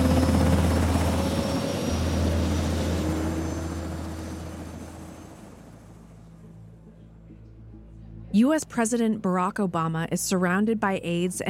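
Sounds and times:
Black Hawk helicopter rotor thrum lifting off into the night sky: 0.0 - 6.1
speech: 8.4 - 11.4.

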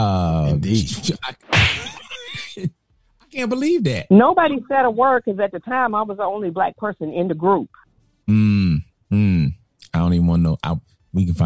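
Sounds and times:
speech: 0.0 - 1.9, 3.4 - 9.4, 10.0 - 11.4
slap sound effect: 1.4 - 2.1
short pitched vocal tone: 8.3 - 10.8.

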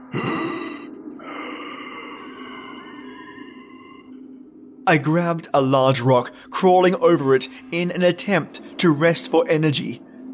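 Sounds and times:
hoarse wheezing breath with a sharp gasp: 0.0 - 4.1
speech: 4.9 - 10.1.

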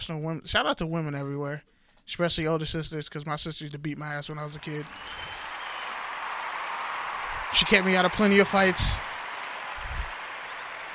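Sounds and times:
speech: 0.0 - 5.4, 7.5 - 9.1
dense applause of many hands clapping: 4.6 - 10.9.

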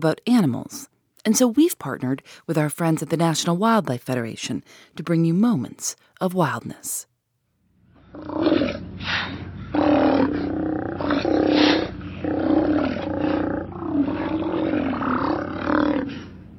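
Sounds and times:
speech: 0.0 - 7.1, 8.1 - 10.4
Steller sea lions growling and bellowing: 8.1 - 16.5.

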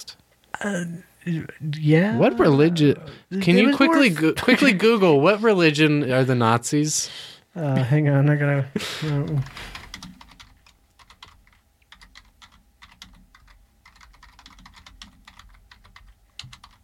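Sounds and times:
speech: 0.0 - 9.8
rapid uneven typing on a computer keyboard: 9.2 - 16.8.

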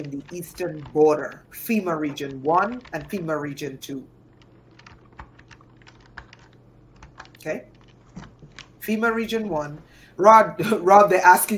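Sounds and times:
speech: 0.0 - 4.2, 7.4 - 7.7, 8.8 - 11.5
typing on a computer keyboard: 0.0 - 8.9
low steady hum: 0.0 - 11.5.

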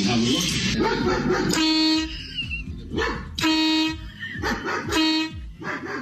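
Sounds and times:
speech: 0.1 - 2.0, 2.9 - 3.2
neighbor's dog barking: 0.8 - 1.8, 2.9 - 3.4, 4.4 - 5.9
car horn honks set off by a homemade device: 1.5 - 2.2, 3.4 - 4.2, 4.9 - 5.5.

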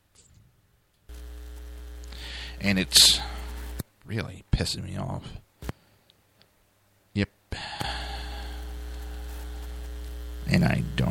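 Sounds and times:
electrical mains hum on a broadcast line: 1.1 - 6.0, 6.7 - 11.0
speech: 2.6 - 3.3, 4.1 - 5.4.

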